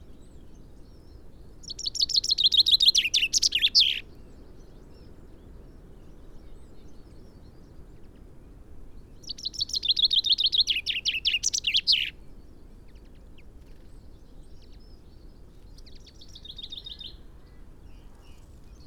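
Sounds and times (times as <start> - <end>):
Common chaffinch Fringilla coelebs song: 0.4 - 5.1, 9.0 - 18.8.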